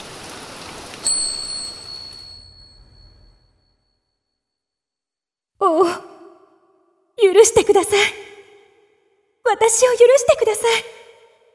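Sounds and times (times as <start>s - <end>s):
heavy rain pouring: 0.0s - 2.2s
high-pitched bell-like ringing: 1.0s - 4.6s
speech: 7.4s - 8.3s, 9.6s - 11.0s.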